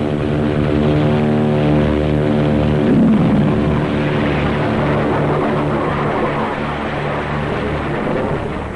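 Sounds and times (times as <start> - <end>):
propeller plane engine droning with harmonic hum: 0.0 - 8.7
JATO rocket bottles roaring during takeoff: 1.1 - 7.0.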